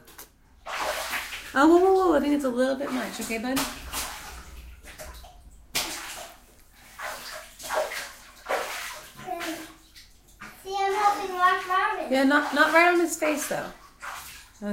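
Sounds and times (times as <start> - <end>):
water splashing and sloshing in a bathtub: 0.0 - 14.7
speech: 1.5 - 3.8, 12.2 - 13.8, 14.6 - 14.7
child's voice: 9.2 - 9.8, 10.6 - 12.1.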